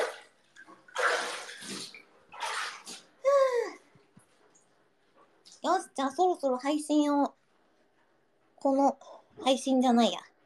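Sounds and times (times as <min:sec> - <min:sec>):
bath water splashing in a bathtub: 0:00.0 - 0:03.3
speech: 0:06.0 - 0:07.3, 0:08.6 - 0:10.3.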